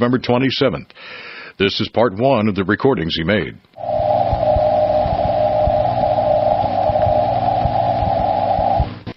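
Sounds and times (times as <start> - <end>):
speech: 0.0 - 3.9
crackling thumping shortwave static during a geomagnetic storm: 3.7 - 9.1
long delayed radio echo of an amateur's Morse call sign on 7 megahertz: 3.8 - 9.1.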